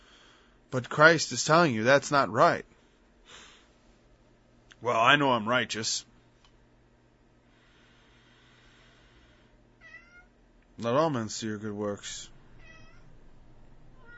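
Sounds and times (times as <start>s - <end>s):
speech: 0.7s - 2.7s, 4.8s - 6.1s, 10.8s - 12.3s
cat meowing loudly: 9.8s - 10.3s, 12.6s - 13.2s, 14.0s - 14.1s
man speaking quietly: 10.8s - 12.4s
soft chirping cat mews: 12.6s - 13.1s, 14.0s - 14.1s.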